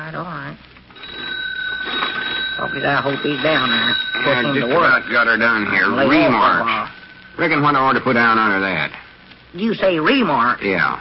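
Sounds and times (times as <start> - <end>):
speech: 0.1 - 0.8, 2.6 - 10.9
telephone ringing with a sustained bell tone: 0.9 - 8.8.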